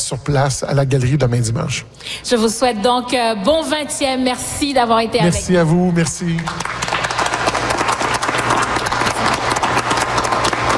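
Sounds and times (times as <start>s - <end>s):
speech: 0.1s - 6.9s
audience applause in an atrium: 5.5s - 10.7s.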